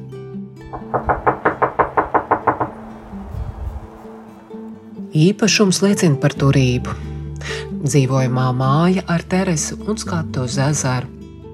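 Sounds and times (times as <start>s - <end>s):
speech: 0.7s - 1.3s, 5.2s - 11.2s
firm knocking on a door: 0.7s - 3.2s.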